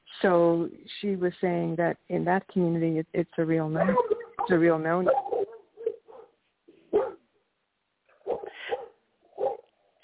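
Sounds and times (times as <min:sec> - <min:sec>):
speech: 0:00.2 - 0:05.2
dog whimpering yips: 0:03.8 - 0:06.1
dog barking: 0:05.1 - 0:07.2, 0:08.1 - 0:09.7.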